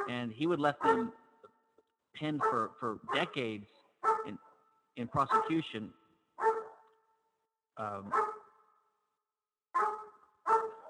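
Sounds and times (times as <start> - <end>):
dog barking: 0.0 - 1.3, 2.3 - 3.3, 4.0 - 5.7, 6.4 - 7.0, 8.1 - 8.6, 9.7 - 10.8
speech: 0.1 - 1.2, 2.2 - 6.5, 7.8 - 8.3.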